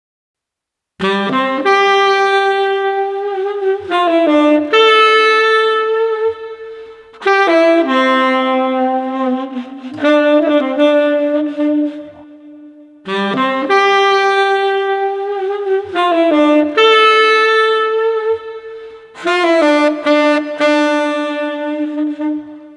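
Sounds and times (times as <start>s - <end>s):
street saxophone playing: 1.0s - 22.7s.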